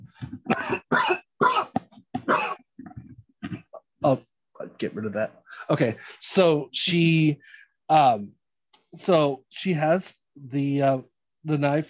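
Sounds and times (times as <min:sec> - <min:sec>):
harsh coughing: 0:00.4 - 0:02.7
throat clearing: 0:00.4 - 0:03.8
speech: 0:04.0 - 0:11.8.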